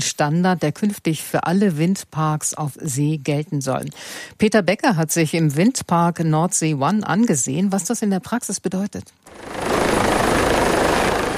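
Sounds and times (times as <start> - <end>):
speech: 0.0 - 10.1
helicopter landing on an offshore substation helideck in the North Sea: 9.3 - 11.3.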